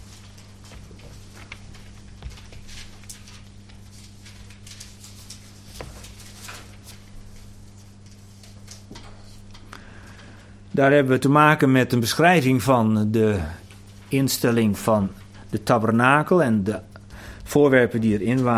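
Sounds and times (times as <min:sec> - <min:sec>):
paper pages of a book turning: 0:00.0 - 0:09.6
steady low electrical hum: 0:00.0 - 0:18.5
speech: 0:10.8 - 0:16.9, 0:17.5 - 0:18.5.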